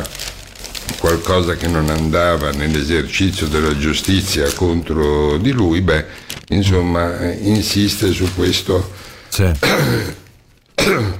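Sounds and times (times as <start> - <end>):
speech: 1.2 - 10.2, 10.8 - 11.1
harsh loud coughing: 9.4 - 11.1.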